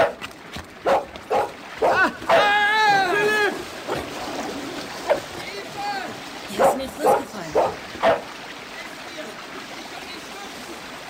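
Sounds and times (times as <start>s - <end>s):
river's constant rush of flowing water: 0.0s - 11.0s
dog barking and yelping as it is urged to attack: 0.8s - 2.5s, 6.5s - 8.3s
people's voices: 1.8s - 4.2s, 5.0s - 10.7s.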